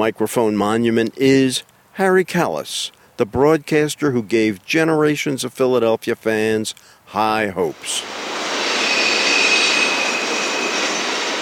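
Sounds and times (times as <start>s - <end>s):
speech: 0.0s - 8.3s
train passing: 7.7s - 11.4s
faint thin high squeal of train wheels: 8.4s - 11.4s.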